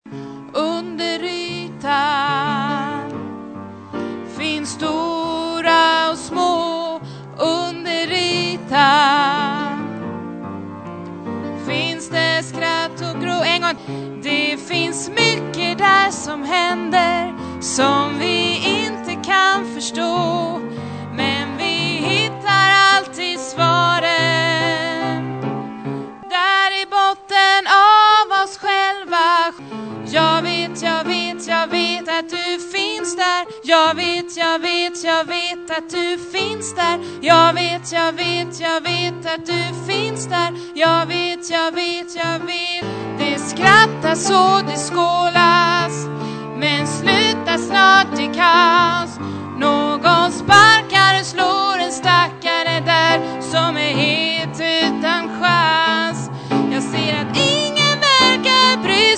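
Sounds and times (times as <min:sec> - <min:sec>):
soprano singing in vocal parts: 0:00.4 - 0:59.1.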